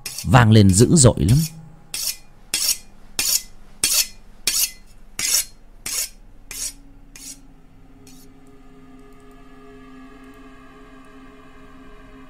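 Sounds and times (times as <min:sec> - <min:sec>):
knife being sharpened: 0:00.0 - 0:00.3, 0:01.3 - 0:07.4, 0:08.1 - 0:08.3
speech: 0:00.2 - 0:01.6.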